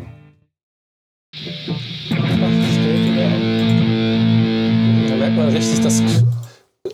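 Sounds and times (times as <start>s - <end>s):
electric guitar through fuzz distortion pedal: 1.4s - 6.3s
speech: 5.8s - 6.4s.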